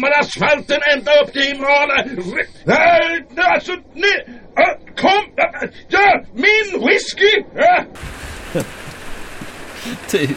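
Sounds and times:
speech: 0.0 - 8.9, 9.8 - 10.3
heavy rain: 8.0 - 10.3
laughter: 8.5 - 9.0, 9.8 - 10.3.

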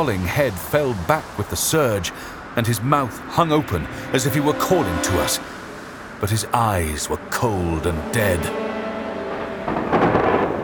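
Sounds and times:
rain in a thunderstorm: 0.0 - 3.0, 8.8 - 10.6
speech: 0.0 - 5.6, 6.2 - 8.6
wind in a thunderstorm: 0.0 - 10.6.

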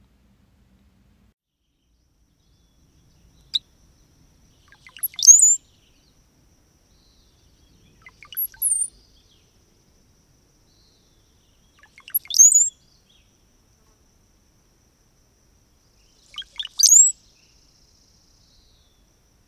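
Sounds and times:
brown-headed cowbird calls with high thin whistled notes: 4.7 - 5.6, 8.0 - 8.9, 11.8 - 12.8, 16.3 - 17.2.

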